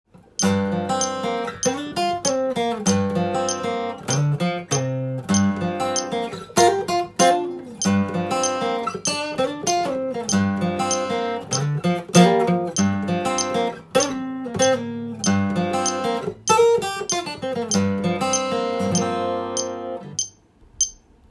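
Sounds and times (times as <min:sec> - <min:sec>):
G minor solo guitar arpeggio: 0:00.4 - 0:20.2.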